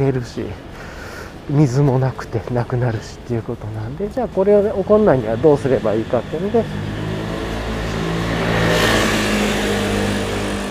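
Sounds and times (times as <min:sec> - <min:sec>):
speech: 0:00.0 - 0:00.7, 0:01.5 - 0:07.0
loud motorbike engine passing by: 0:03.8 - 0:10.6.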